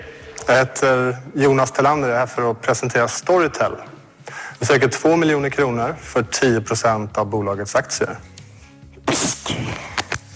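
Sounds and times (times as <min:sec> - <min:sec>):
speech: 0:00.5 - 0:03.9, 0:04.6 - 0:08.3
sneeze: 0:09.0 - 0:10.0.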